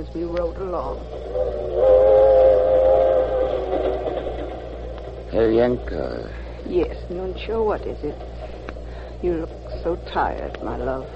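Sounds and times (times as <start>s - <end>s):
speech: 0.0s - 2.1s, 5.3s - 8.5s, 9.2s - 11.1s
special train to New York around 1908 rumbling along rails: 0.0s - 11.1s
sustained whistle-like tone: 0.1s - 5.9s.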